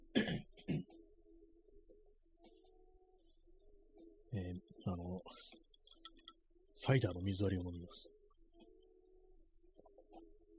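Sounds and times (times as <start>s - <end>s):
person clearing throat: 0.1s - 0.9s
speech: 6.8s - 8.2s.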